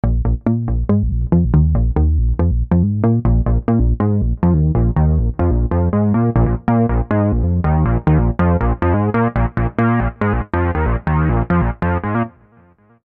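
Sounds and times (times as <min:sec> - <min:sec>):
synthesizer double kick bass: 0:00.0 - 0:12.3.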